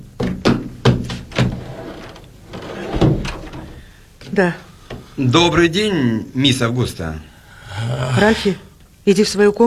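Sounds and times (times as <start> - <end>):
knocking on a wooden door: 0.1 - 1.6
speech: 4.4 - 9.6.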